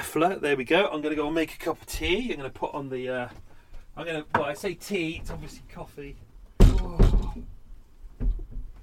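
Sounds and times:
speech: 0.1 - 3.4, 4.0 - 7.6
wooden doors thunking as they are opened: 6.6 - 7.6.

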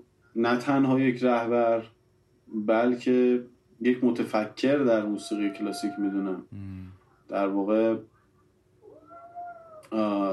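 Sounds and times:
speech: 0.4 - 8.1, 9.9 - 10.3
cat meowing: 4.9 - 6.4, 8.8 - 10.0.

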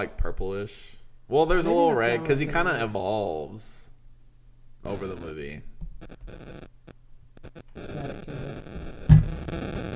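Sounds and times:
speech: 0.0 - 3.9, 4.8 - 5.7
harsh electronic static hissing and buzzing: 4.8 - 9.9
sharp crackling pop: 7.4 - 9.9.

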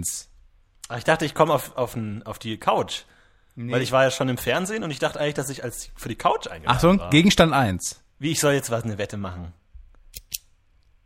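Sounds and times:
speech: 0.0 - 0.3, 0.9 - 10.2
ballpoint pen clicking: 10.2 - 10.5.

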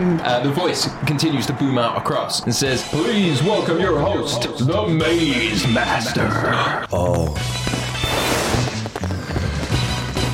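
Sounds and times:
speech: 0.0 - 7.8
fireworks bursting overhead: 7.6 - 10.3.

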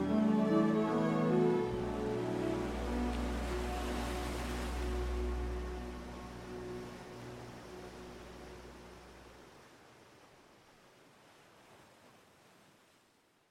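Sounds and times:
soft musical tone: 0.0 - 9.4
ocean surf rolling onto the shore: 0.0 - 13.2.

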